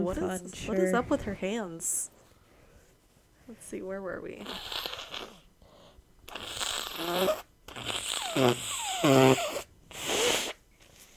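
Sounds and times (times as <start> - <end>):
speech: 0.0 - 2.2, 3.5 - 5.4, 7.0 - 9.5
person blowing nose: 4.4 - 5.5, 6.3 - 10.7.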